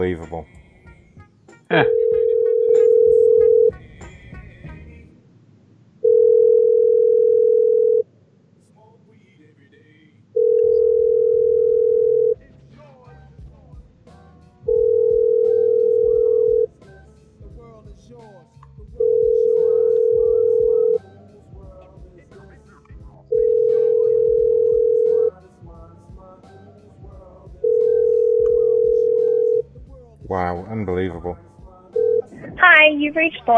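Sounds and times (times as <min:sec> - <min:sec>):
speech: 0:00.0 - 0:00.6, 0:01.7 - 0:02.2, 0:33.1 - 0:33.5
low hum: 0:00.0 - 0:33.5
telephone ringback tone as a call rings unanswered: 0:01.8 - 0:03.7, 0:06.0 - 0:08.0, 0:10.4 - 0:12.4, 0:14.7 - 0:16.7, 0:19.0 - 0:21.0, 0:23.3 - 0:25.3, 0:27.6 - 0:29.6, 0:32.0 - 0:32.8.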